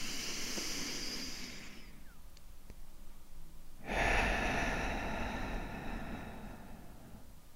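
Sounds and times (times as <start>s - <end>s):
person exhaling through the mouth during a guided breathing exercise: 0.0s - 2.1s, 3.8s - 7.3s.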